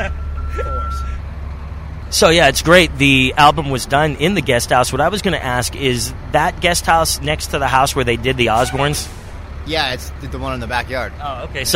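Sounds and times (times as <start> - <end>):
truck backup beep: 0.0 - 1.2
truck engine idling with deep rumble: 0.0 - 11.7
speech: 2.1 - 11.7.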